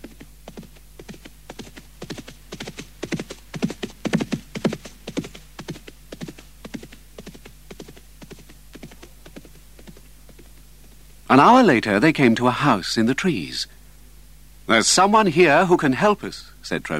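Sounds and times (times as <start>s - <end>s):
black horse's hooves clip-clopping as it is ridden into a forest: 0.0s - 11.3s
speech: 11.4s - 13.7s, 14.7s - 16.9s.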